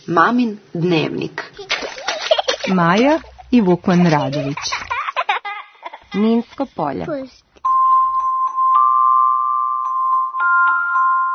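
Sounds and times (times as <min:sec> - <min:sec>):
speech: 0:00.1 - 0:01.7, 0:02.6 - 0:04.8, 0:06.1 - 0:07.4
laughter: 0:01.6 - 0:06.2
electronic doorbell ringing: 0:07.7 - 0:11.3.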